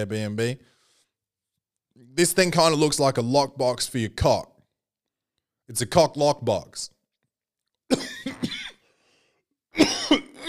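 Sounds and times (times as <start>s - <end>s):
speech: 0.0s - 0.8s, 2.0s - 4.5s, 5.7s - 7.0s
harsh raspy coughing: 7.9s - 8.8s, 9.7s - 10.4s.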